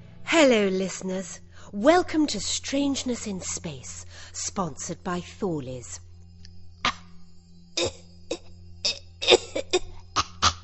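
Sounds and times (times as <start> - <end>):
low steady hum: 0.0 - 10.6
speech: 0.3 - 6.0, 7.8 - 8.0
harsh coughing fit: 7.8 - 10.6.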